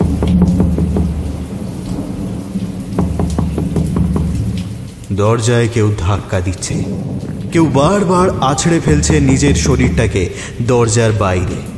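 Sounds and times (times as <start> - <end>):
crackling bursts of thunder: 0.0 - 11.7
heavy rain pouring during a nighttime thunderstorm: 0.0 - 11.7
speech: 5.2 - 11.7.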